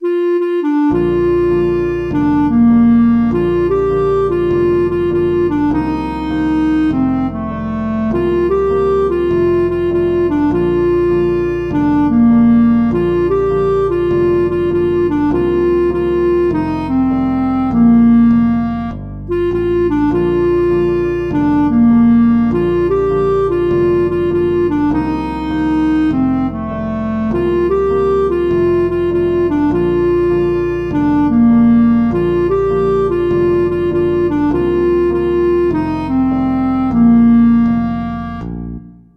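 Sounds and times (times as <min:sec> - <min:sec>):
clarinet: 0:00.0 - 0:39.1.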